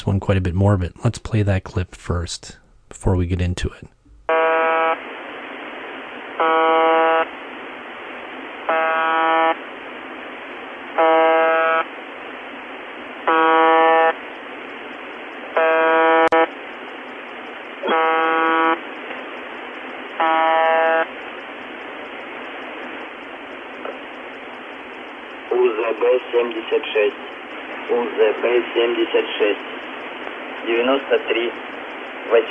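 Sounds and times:
speech: 0.0 - 4.4, 26.4 - 27.2, 28.5 - 29.8, 30.6 - 32.5
hiss of shortwave radio static: 0.0 - 32.5
harsh droning buzzer tone on shortwave radio: 4.3 - 5.0, 6.4 - 7.3, 8.7 - 9.6, 11.0 - 11.9, 13.2 - 14.2, 15.5 - 16.5, 17.8 - 18.8, 20.2 - 21.1.

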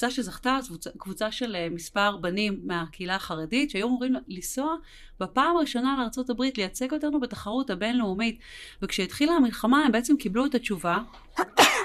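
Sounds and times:
speech: 0.0 - 11.8
person sneezing: 11.4 - 11.8.

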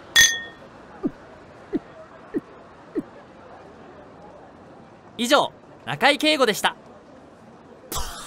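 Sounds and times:
glasses clinking in a toast: 0.1 - 0.6
speech: 5.2 - 6.8.

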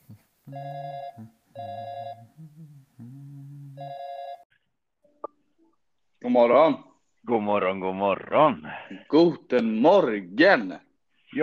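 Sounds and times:
speech: 0.1 - 3.3, 6.2 - 11.4
telephone ringback tone on an outgoing call: 0.5 - 2.2, 3.8 - 4.4.

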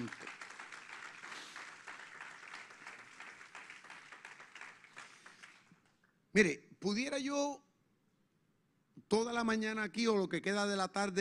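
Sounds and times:
congregation applauding: 0.0 - 5.8
speech: 6.3 - 7.6, 9.1 - 11.1.

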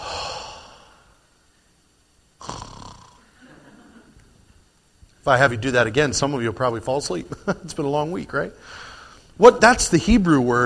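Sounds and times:
deep breath in and out: 0.0 - 1.3, 8.6 - 9.4
speech: 5.2 - 10.6.

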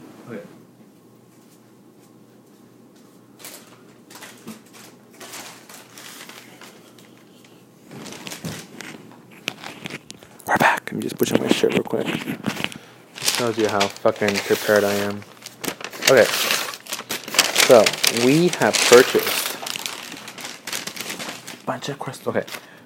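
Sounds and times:
crinkling and rustling of paper or cards: 3.0 - 7.3, 7.9 - 10.3, 11.1 - 22.7
speech: 11.2 - 12.3, 13.4 - 15.3, 16.1 - 16.5, 17.7 - 19.4, 21.7 - 22.7.

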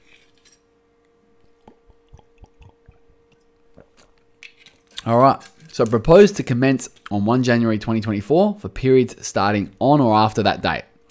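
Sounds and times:
wet gulps of water: 1.5 - 4.2
mouth clicks: 1.6 - 3.9
speech: 5.0 - 10.9.

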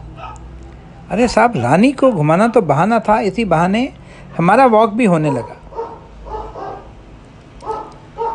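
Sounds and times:
dog barking: 0.1 - 0.5, 5.2 - 6.9, 7.6 - 8.3
speech: 1.1 - 5.6.

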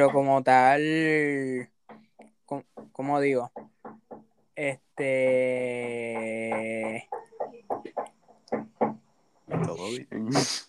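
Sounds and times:
speech: 0.0 - 1.7, 2.5 - 3.6, 4.6 - 7.2, 9.6 - 10.6
knocking on a door: 1.6 - 4.8, 5.7 - 9.8.

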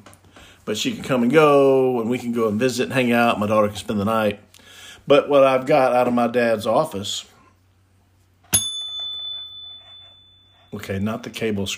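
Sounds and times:
speech: 0.7 - 4.5, 5.1 - 7.3, 10.7 - 11.7
small desk bell ding: 8.5 - 11.3.

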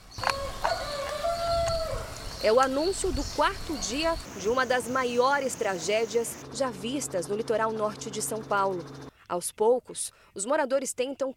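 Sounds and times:
rooster crowing at dawn: 0.2 - 2.2
speech: 2.4 - 11.3.

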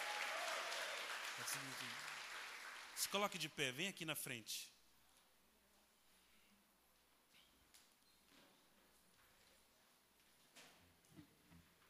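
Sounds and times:
church audience applauding: 0.0 - 3.5
speech: 1.4 - 2.1, 3.0 - 4.7.

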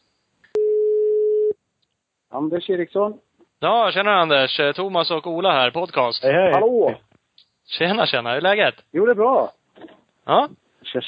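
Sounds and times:
telephone ringing tone as a call is placed: 0.6 - 1.5
speech: 2.4 - 7.1, 7.7 - 11.0.

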